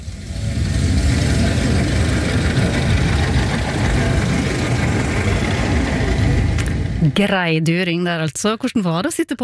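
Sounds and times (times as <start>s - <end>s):
vintage car engine running while driving: 0.0s - 8.0s
speech: 7.2s - 9.4s.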